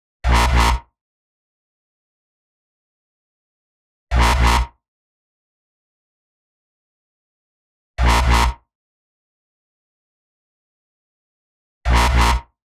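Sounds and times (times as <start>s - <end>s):
124 BPM G synth bass: 4.2s - 4.6s, 8.1s - 8.4s, 11.9s - 12.4s.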